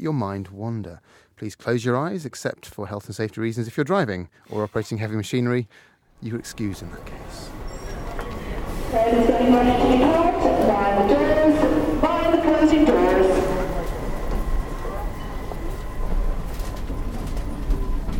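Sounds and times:
speech: 0.0 - 7.6, 8.9 - 11.8
passengers' voices chattering: 6.2 - 17.7
London Underground Central line tube train rumbling inside a carriage: 6.8 - 18.1.

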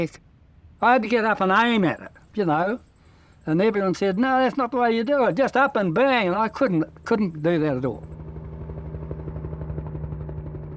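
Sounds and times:
speech: 0.0 - 8.2
helicopter rotor chopping: 4.2 - 10.7
helicopter engine hum: 6.0 - 10.7.

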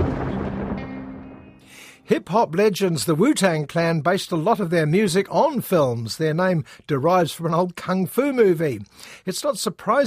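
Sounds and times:
thunder rumbling before a storm: 0.0 - 1.8
speech: 2.1 - 10.0.

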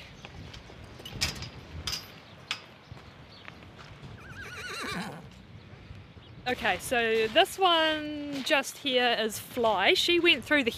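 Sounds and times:
steady outdoor wind: 0.0 - 10.7
retrained standardbred horse whinnying: 4.2 - 5.4
speech: 6.5 - 10.7.

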